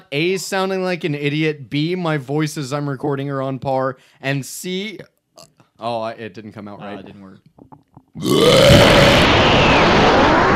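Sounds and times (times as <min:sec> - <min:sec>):
speech: 0:00.1 - 0:10.0
long loud rumbling burp: 0:08.2 - 0:09.6.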